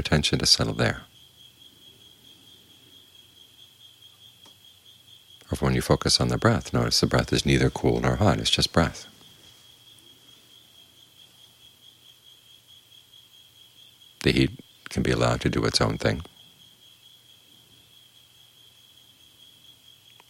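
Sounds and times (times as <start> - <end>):
speech: 0.0 - 1.1, 5.5 - 9.2, 14.2 - 16.3
crickets chirping: 0.0 - 20.2
low hum: 0.0 - 20.2.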